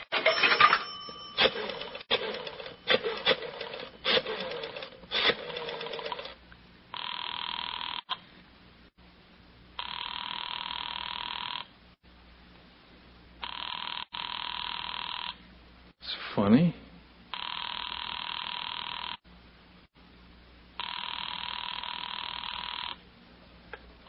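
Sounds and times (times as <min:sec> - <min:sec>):
telephone ringing heard through the line: 0:00.2 - 0:06.4, 0:06.9 - 0:08.1, 0:09.8 - 0:11.7, 0:13.4 - 0:15.4, 0:17.3 - 0:19.2, 0:20.8 - 0:23.0.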